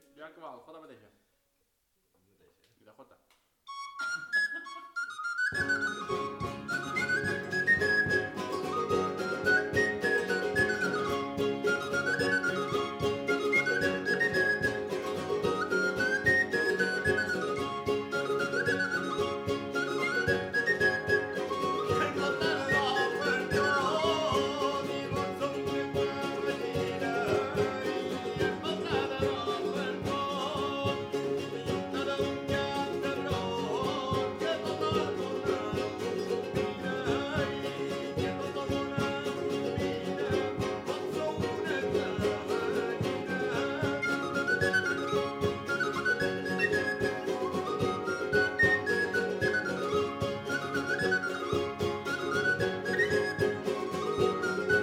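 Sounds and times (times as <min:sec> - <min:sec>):
flabiol playing jota folk dance music: 0:03.7 - 0:54.8.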